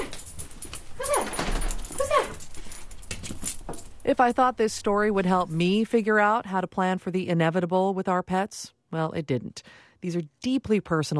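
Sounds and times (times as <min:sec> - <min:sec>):
one-year-old shelter dog whimpering: 0:01.0 - 0:02.5
speech: 0:04.1 - 0:11.1.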